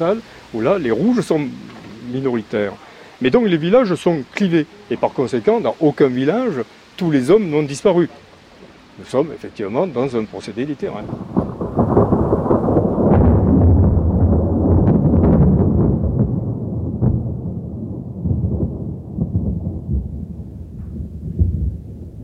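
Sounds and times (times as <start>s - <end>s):
heavy rumbling thunderclap: 0.0s - 2.8s, 10.8s - 22.2s
speech: 0.0s - 8.3s, 9.0s - 11.4s
steady rain hissing and pattering: 0.0s - 22.2s.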